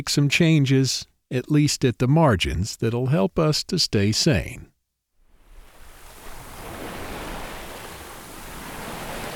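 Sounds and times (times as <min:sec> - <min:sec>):
speech: 0:00.0 - 0:04.7
breezy hiss: 0:05.5 - 0:09.3
water lapping against a sailboat hull: 0:05.6 - 0:09.3.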